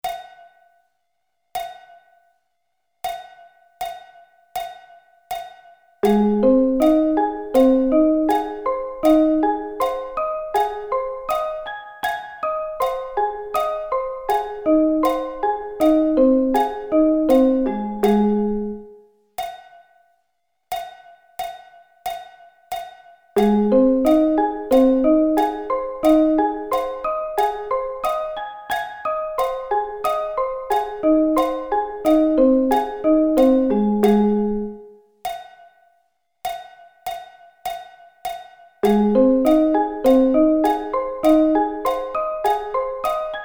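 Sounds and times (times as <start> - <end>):
A-flat arpeggio inversions: 6.0 - 19.0, 23.4 - 34.9, 38.8 - 43.4.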